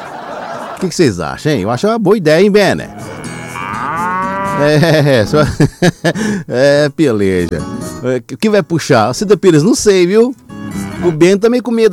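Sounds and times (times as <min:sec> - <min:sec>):
laughter: 0:00.0 - 0:01.0, 0:04.6 - 0:06.6
speech: 0:00.8 - 0:03.1, 0:04.6 - 0:11.9
ox mooing and bellowing: 0:02.8 - 0:05.0, 0:10.6 - 0:11.2.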